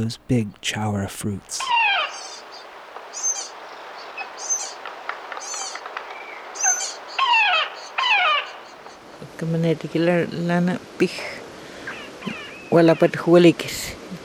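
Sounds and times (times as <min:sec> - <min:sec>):
speech: 0:00.0 - 0:01.8, 0:09.4 - 0:11.4, 0:12.2 - 0:14.0
Magellanic woodpecker calls: 0:00.0 - 0:09.2
Magellanic woodpecker descending squeals: 0:01.5 - 0:09.1.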